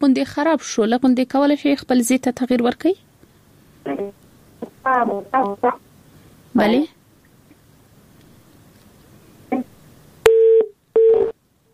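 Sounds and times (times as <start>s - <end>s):
speech: 0.0s - 3.1s, 4.8s - 5.9s, 6.6s - 7.0s
telephone busy tone after a dropped call: 10.3s - 11.3s.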